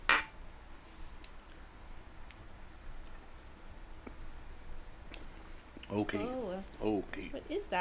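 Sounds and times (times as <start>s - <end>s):
glasses of IPA beer clinking in a toast: 0.1s - 0.4s, 5.9s - 7.0s
faint small ticks and taps: 2.2s - 4.3s, 5.1s - 6.8s
speech: 5.9s - 7.7s.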